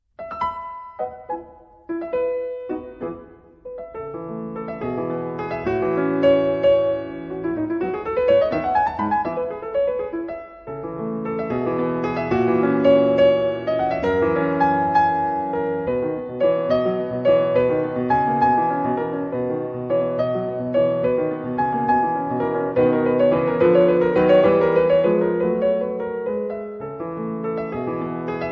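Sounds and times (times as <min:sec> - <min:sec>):
scherzo played by a female concert pianist: 0:00.0 - 0:28.4.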